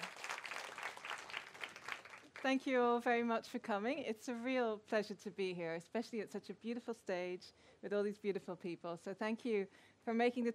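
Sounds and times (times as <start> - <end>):
audience applauding: 0.0 - 2.5
speech: 2.4 - 10.5.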